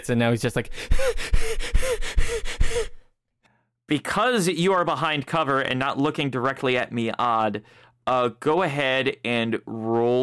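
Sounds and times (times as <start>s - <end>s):
speech: 0.0s - 3.0s, 3.9s - 10.2s
voice imitating a man's fast heavy panting after chopping wood: 0.7s - 3.0s.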